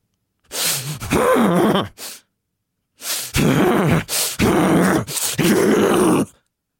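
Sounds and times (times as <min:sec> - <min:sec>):
person huffing forced deep stressful breaths: 0:00.5 - 0:02.3, 0:03.0 - 0:05.5.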